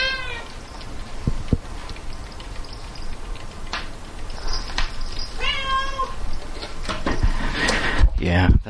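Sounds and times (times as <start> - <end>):
hungry cat whining for dinner: 0.0 - 0.5, 5.4 - 6.2
steady hiss: 0.0 - 8.6.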